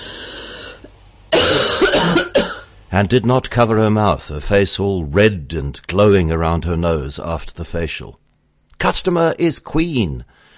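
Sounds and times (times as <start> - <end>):
woman coughing in loud harsh bursts: 1.3 - 2.7
speech: 2.9 - 8.2, 8.8 - 10.4.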